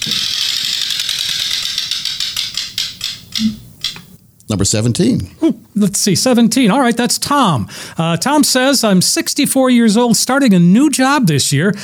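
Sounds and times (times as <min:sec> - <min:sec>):
18-number prize wheel spinning with ratcheting clicks: 0:00.0 - 0:04.2
speech: 0:04.5 - 0:11.8.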